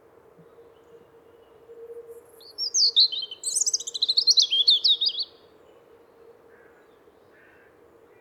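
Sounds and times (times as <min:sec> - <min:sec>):
European robin song: 0:02.4 - 0:05.4.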